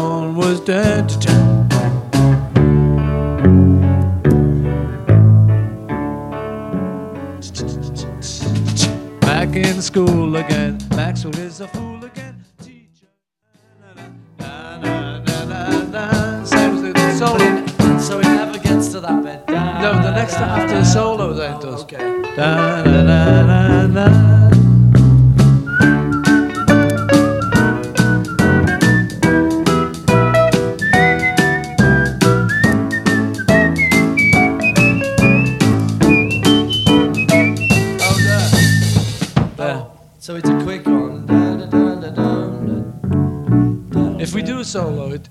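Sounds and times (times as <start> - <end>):
full band backing track: 0.0 - 12.4, 14.0 - 39.6, 40.4 - 45.3
speech: 0.4 - 1.5, 9.6 - 12.2, 18.1 - 24.4
person whistling a clear wavering melody: 25.7 - 29.5, 30.1 - 39.0.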